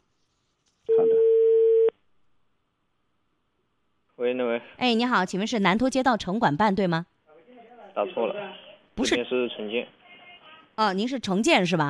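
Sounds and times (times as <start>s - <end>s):
telephone ringback tone: 0.9s - 1.9s
speech: 4.3s - 7.1s, 8.0s - 10.0s, 10.8s - 11.8s.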